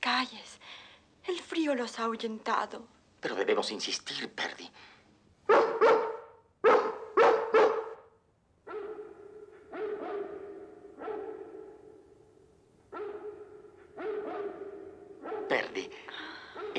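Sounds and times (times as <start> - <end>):
speech: 0.1 - 5.9
Great Dane barking at night in Hampstead: 5.5 - 12.1, 12.9 - 16.7.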